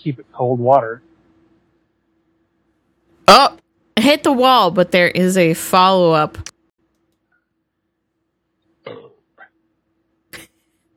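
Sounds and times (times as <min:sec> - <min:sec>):
speech: 0:00.0 - 0:01.1, 0:03.3 - 0:06.5
low steady hum: 0:00.0 - 0:10.9
short rough burp-like sounds: 0:08.8 - 0:09.6.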